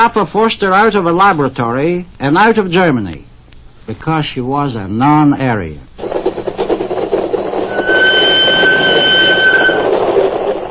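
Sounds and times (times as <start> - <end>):
speech: 0.0 - 3.3, 3.9 - 6.2
train rumbling along the rails: 5.9 - 10.7
thin metallic squeal of a train: 7.5 - 10.6.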